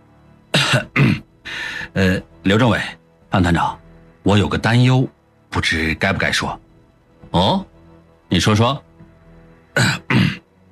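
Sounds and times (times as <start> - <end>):
person coughing: 0.6 - 1.2, 9.8 - 10.4
speech: 0.7 - 1.2, 2.0 - 6.6, 7.3 - 7.7, 8.3 - 8.9, 9.8 - 10.4.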